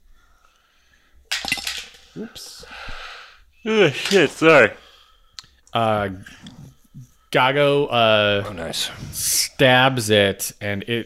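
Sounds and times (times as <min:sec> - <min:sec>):
dice clattering as they are fumbled onto a table: 0:01.3 - 0:02.1
speech: 0:02.2 - 0:03.0, 0:03.6 - 0:04.8, 0:05.7 - 0:11.0.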